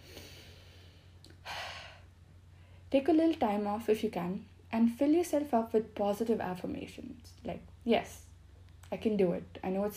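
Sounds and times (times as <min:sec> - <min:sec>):
deep breath: 0:00.0 - 0:02.9
low steady hum: 0:00.0 - 0:09.9
speech: 0:02.9 - 0:08.3, 0:08.9 - 0:09.9.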